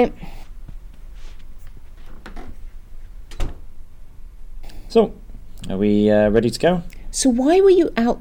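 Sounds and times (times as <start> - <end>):
speech: 0.0 - 0.4, 4.9 - 8.1
front door thumping shut: 3.2 - 3.6.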